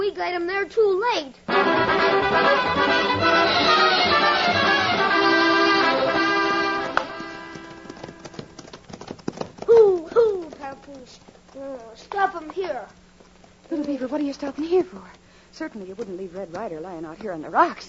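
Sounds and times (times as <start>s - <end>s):
speech: 0.2s - 3.8s, 11.0s - 13.0s, 13.7s - 17.8s
music: 1.5s - 8.6s
horse hoofbeats from riders setting off together: 1.5s - 17.8s.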